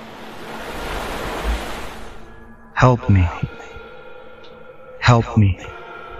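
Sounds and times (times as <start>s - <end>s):
flowing river water rushing: 0.0s - 2.3s
speech: 2.8s - 3.8s, 5.1s - 5.8s.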